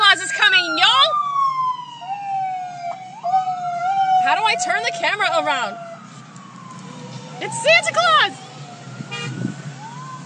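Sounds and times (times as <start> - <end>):
faint road noise: 0.0 - 10.2
hum of idling traffic: 0.0 - 10.2
speech: 4.5 - 5.9, 7.4 - 8.4
car horn honking in stopped traffic: 9.1 - 9.4.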